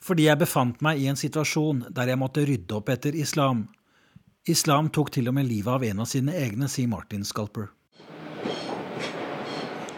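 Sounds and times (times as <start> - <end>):
speech: 0.0 - 3.8, 4.4 - 8.1
faint high metallic squeals: 8.0 - 9.9
train rolling into a station with broadband rumble and rattle: 8.1 - 9.9.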